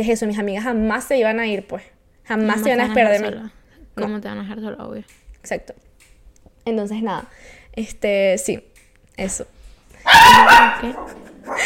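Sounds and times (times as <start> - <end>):
speech: 0.0 - 5.9, 6.6 - 11.6
small dog barking and yipping: 10.0 - 11.6.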